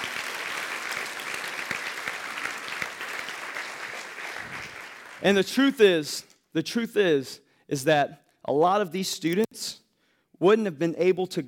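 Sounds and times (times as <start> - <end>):
audience applauding students: 0.0 - 5.4
speech: 5.2 - 9.8, 10.4 - 11.4.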